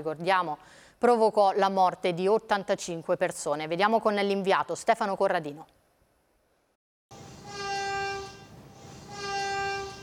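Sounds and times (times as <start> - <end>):
speech: 0.0 - 5.8
train whistle blasts at a railway station: 7.2 - 10.0.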